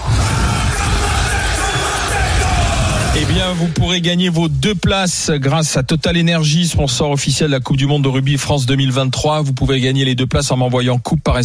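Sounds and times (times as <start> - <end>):
many deep male voices shouting a rugby haka chant in unison: 0.0 - 3.4
speech: 3.2 - 11.4.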